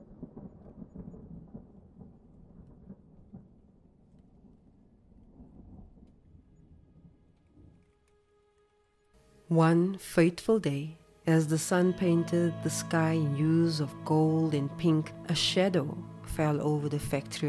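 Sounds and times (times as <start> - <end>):
deep rolling thunder: 0.0 - 4.0
constant heavy rain: 0.0 - 9.5
speech: 9.5 - 17.4.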